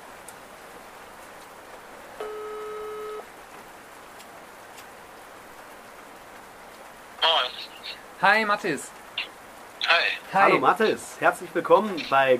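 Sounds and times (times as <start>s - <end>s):
constant hiss: 0.0s - 12.3s
telephone ringback tone while calling: 2.2s - 3.3s
speech: 7.8s - 9.0s, 10.0s - 12.3s.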